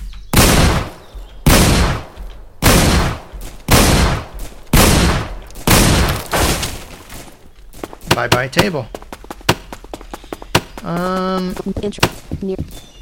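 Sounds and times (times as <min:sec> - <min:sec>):
Winchester shotgun blasts in a video game: 0:00.3 - 0:06.9
speech: 0:08.2 - 0:09.0, 0:10.8 - 0:12.9.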